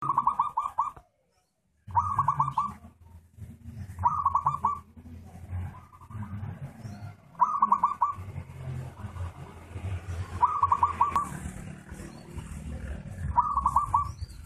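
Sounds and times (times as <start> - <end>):
zebra dove song: 0.0 - 1.1, 1.9 - 3.0, 3.7 - 5.0, 5.6 - 8.4, 10.3 - 14.4.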